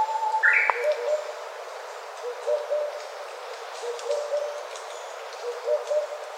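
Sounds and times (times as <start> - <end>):
Oriental cuckoo calling soft paired hoots: 0.0 - 1.4, 2.2 - 3.1, 3.8 - 4.7, 5.4 - 6.2
steady background noise: 0.0 - 6.3.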